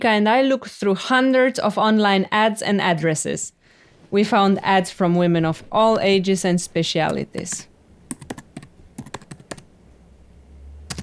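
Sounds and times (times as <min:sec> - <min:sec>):
speech: 0:00.0 - 0:07.7
low room hum: 0:03.6 - 0:11.0
crisp clicky computer keyboard typing: 0:07.0 - 0:10.3.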